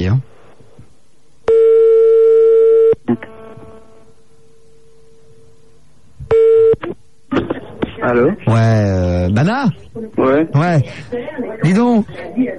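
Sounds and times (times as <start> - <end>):
speech: 0.0 - 0.4, 8.1 - 12.5
telephone tones as a call is placed: 1.5 - 3.0.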